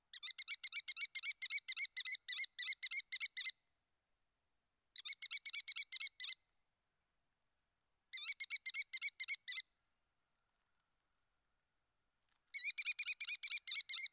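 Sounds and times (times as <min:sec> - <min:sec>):
American Kestrel calling: 0:00.1 - 0:03.6, 0:05.0 - 0:06.4, 0:08.1 - 0:09.7, 0:12.5 - 0:14.1.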